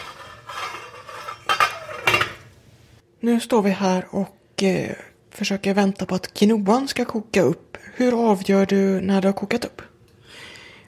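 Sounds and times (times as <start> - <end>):
lid scraping onto a saucepan of salted water on a stove: 0.0 - 2.6
speech: 3.2 - 9.9.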